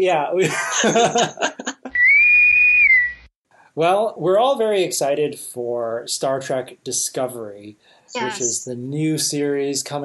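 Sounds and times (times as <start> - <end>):
speech: 0.0 - 1.7, 3.8 - 10.0
laughter: 0.4 - 1.9
electronic intercom whistle call: 1.9 - 3.3.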